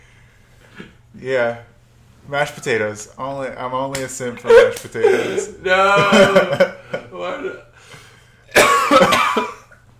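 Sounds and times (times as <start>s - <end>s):
quiet hum: 0.0s - 9.9s
speech: 1.2s - 8.0s
laughter: 4.2s - 7.7s
harsh raspy coughing: 4.4s - 6.6s, 8.5s - 9.8s.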